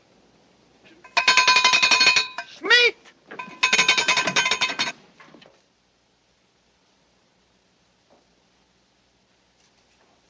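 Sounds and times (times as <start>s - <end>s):
supper bell ringing rapidly: 1.1s - 2.6s, 3.4s - 5.0s.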